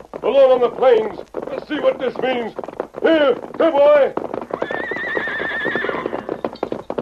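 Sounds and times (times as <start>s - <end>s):
horse hooves clopping: 0.0s - 7.0s
speech: 0.3s - 4.2s
horse whinnying: 4.4s - 6.7s.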